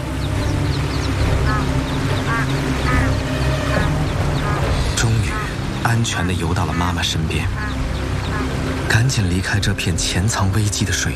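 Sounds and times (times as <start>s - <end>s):
ducklings peeping while paddling in a river: 0.0s - 5.8s, 6.4s - 8.7s
rushing water of a turbulent river: 0.0s - 11.1s
speech: 6.0s - 7.8s, 8.9s - 11.1s.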